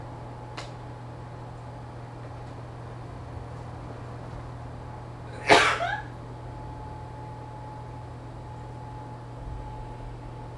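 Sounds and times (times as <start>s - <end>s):
faint steady hum: 0.0s - 10.5s
person sneezing: 5.3s - 6.1s.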